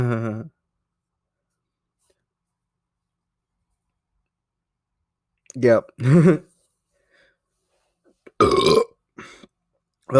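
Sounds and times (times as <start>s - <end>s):
speech: 0.0s - 0.6s, 5.6s - 6.5s, 8.4s - 8.7s
person burping into the microphone: 8.3s - 9.0s.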